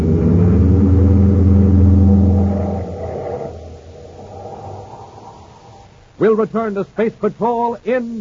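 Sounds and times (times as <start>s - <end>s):
car engine roaring as the car is driven toward a fuel tank: 0.0s - 6.0s
speech: 6.2s - 8.1s.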